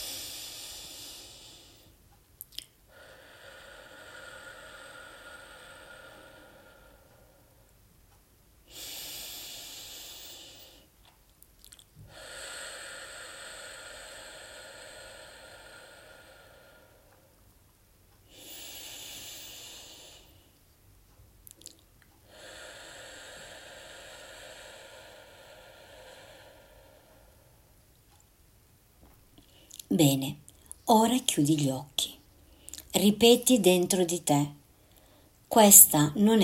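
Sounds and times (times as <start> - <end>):
deep breaths in through the nose and out through the mouth: 0.0 - 2.1, 2.9 - 7.8, 8.6 - 11.0, 12.0 - 17.4, 18.2 - 20.6, 21.6 - 28.2, 34.6 - 35.5
speech: 30.0 - 32.2, 33.0 - 34.6, 35.6 - 36.4.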